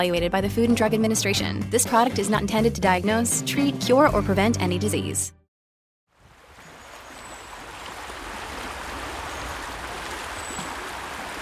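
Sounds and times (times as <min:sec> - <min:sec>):
speech: 0:00.0 - 0:05.4
flowing river water: 0:06.1 - 0:11.4.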